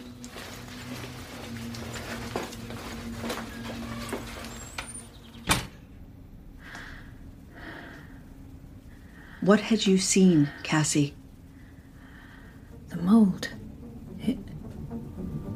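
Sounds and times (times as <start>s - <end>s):
shuffling inside a car: 0.0s - 5.3s
low steady rumble: 0.0s - 15.5s
speech: 9.4s - 11.2s.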